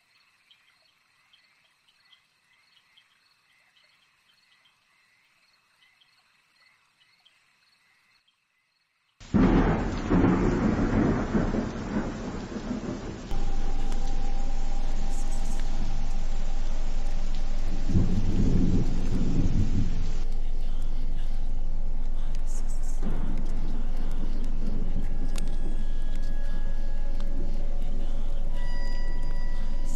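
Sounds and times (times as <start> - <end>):
steady rain hiss: 9.2 - 29.9
loud thunderclap and deep rumble in a storm: 9.3 - 29.9.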